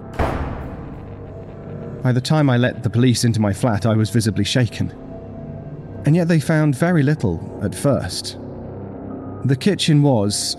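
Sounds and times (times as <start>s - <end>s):
door slamming in an enclosed space: 0.0s - 1.8s
speech: 2.0s - 5.0s, 6.0s - 8.4s, 9.4s - 10.5s.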